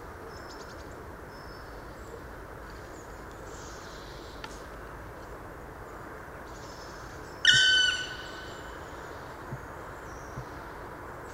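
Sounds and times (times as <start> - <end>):
quiet hiss: 0.0 - 11.3
black woodpecker mournful call note in a park garden: 7.4 - 10.7.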